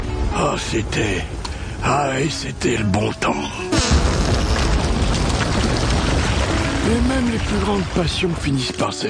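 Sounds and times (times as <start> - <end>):
speech: 0.4 - 4.2, 6.8 - 9.0
loud explosion boom with rumbling roar: 3.8 - 6.8.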